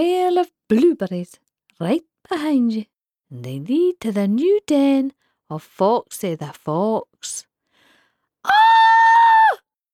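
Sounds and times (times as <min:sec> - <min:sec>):
speech: 0:00.0 - 0:07.5, 0:08.4 - 0:08.9
loud piercing scream: 0:08.5 - 0:09.6.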